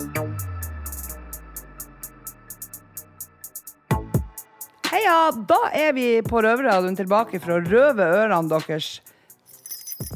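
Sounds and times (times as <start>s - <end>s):
speech: 4.9s - 9.1s
bunch of keys jangling: 9.4s - 10.1s.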